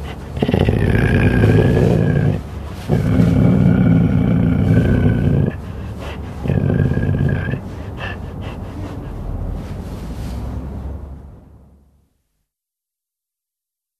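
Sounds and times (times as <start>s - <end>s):
cougar growling: 0.0s - 9.2s.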